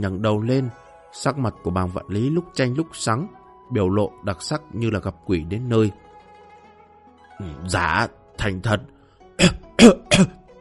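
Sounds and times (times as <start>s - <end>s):
speech: 0.0s - 6.0s, 7.4s - 10.4s
angry old man coughing: 9.4s - 10.4s.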